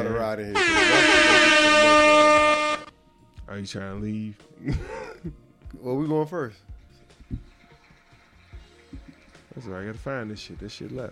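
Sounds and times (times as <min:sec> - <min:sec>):
speech: 0:00.0 - 0:01.2, 0:03.5 - 0:06.7, 0:09.6 - 0:11.1
air horn sound effect blast: 0:00.6 - 0:02.9.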